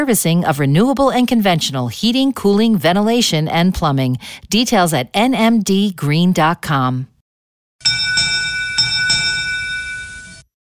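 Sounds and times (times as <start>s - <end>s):
speech: 0.0s - 7.1s
Derby bell ringing: 7.8s - 10.5s.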